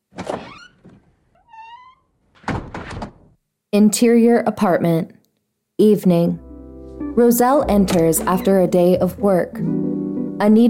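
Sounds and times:
door rattling open, creaking and shutting with a thud as a woman leaves: 0.0 - 3.4, 7.7 - 8.7
speech: 3.7 - 5.2, 5.8 - 6.4, 7.2 - 9.8, 10.4 - 10.6.

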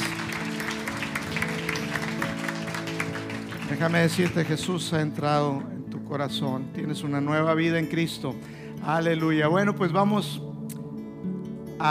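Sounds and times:
crowd clapping: 0.0 - 5.2
speech: 3.7 - 10.5.

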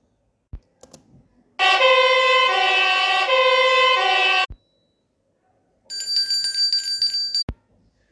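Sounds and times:
fire engine siren: 1.6 - 4.5.

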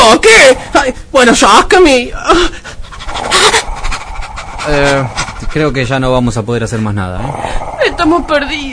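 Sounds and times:
speech: 0.1 - 2.6, 4.7 - 8.7
dog panting: 2.7 - 6.9.

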